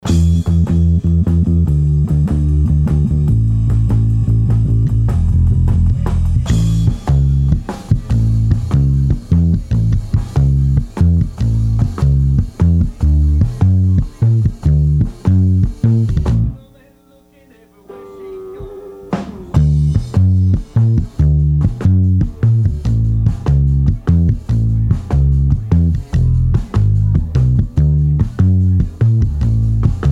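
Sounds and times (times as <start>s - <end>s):
bass amp: 0.0s - 30.0s
drum leakage into the bass amp mic: 4.8s - 30.0s.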